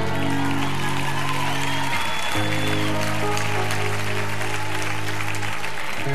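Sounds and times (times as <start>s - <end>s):
large audience applause: 0.0s - 6.1s.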